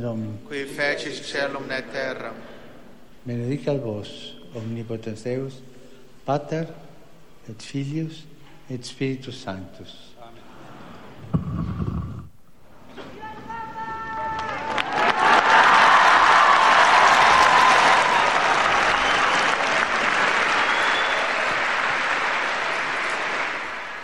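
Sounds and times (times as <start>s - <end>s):
speech: 0.0s - 2.6s, 3.2s - 5.7s, 6.3s - 10.1s
faint cheering: 13.4s - 21.7s
large crowd applauding after papal audience: 14.3s - 24.0s.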